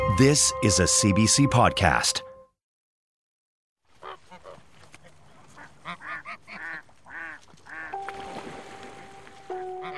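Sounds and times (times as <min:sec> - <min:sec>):
speech: 0:00.2 - 0:02.3
flock of geese honking: 0:03.9 - 0:08.2, 0:09.3 - 0:09.9
outdoor noise: 0:03.9 - 0:09.3.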